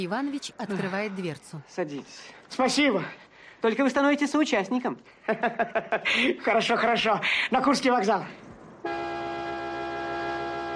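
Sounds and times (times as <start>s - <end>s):
speech: 0.0s - 9.0s
laughter: 5.2s - 7.2s
Volga car anti-theft alarm blaring: 8.9s - 10.7s.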